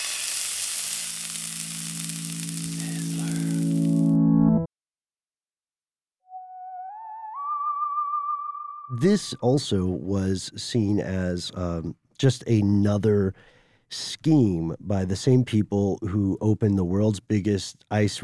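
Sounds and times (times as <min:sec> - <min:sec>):
loud crackling sizzle: 0:00.0 - 0:04.2
thin whistling tone rising in steps: 0:06.3 - 0:09.0
speech: 0:09.0 - 0:18.2.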